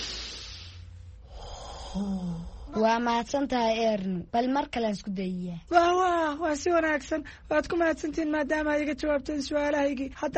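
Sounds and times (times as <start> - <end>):
deep breath taken during a calming exercise: 0.0 - 2.8
speech: 2.0 - 10.3.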